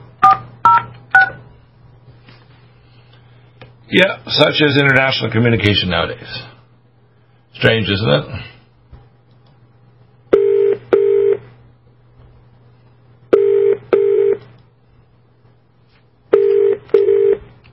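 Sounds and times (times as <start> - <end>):
telephone tones of short steady electronic beeps: 0.2 - 1.4, 10.4 - 11.4, 13.4 - 14.4, 16.3 - 17.4
speech: 3.9 - 6.5, 7.6 - 8.5.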